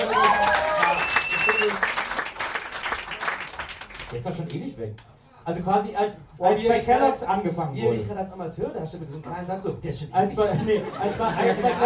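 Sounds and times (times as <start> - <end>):
small group clapping: 0.0 - 4.7
speech: 4.1 - 11.8
laughter: 10.4 - 11.8.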